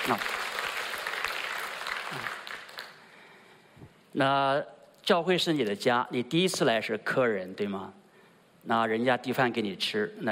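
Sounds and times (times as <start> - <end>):
large crowd applauding: 0.0 - 3.0
speech: 0.1 - 0.4, 2.1 - 2.4, 4.2 - 8.0, 8.6 - 10.3.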